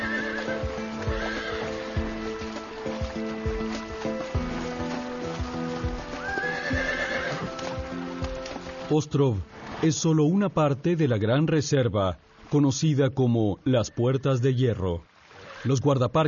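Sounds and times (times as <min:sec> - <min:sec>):
wild horse hooves clip-clopping: 0:00.0 - 0:09.8
wild horses neighing on Ostrov island: 0:00.0 - 0:09.8, 0:15.3 - 0:15.9
speech: 0:08.9 - 0:16.2.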